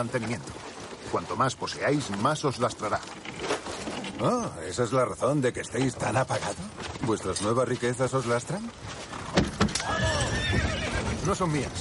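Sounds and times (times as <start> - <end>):
speech: 0.0 - 3.5, 4.2 - 9.1, 11.2 - 11.7
horse hooves clopping: 0.0 - 11.7
horse whinnying: 9.7 - 11.4.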